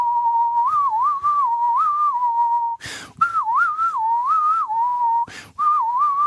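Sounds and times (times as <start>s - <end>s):
person whistling to imitate wind through a chairlift: 0.0s - 6.2s
short breathy gusts of noise: 2.8s - 3.2s.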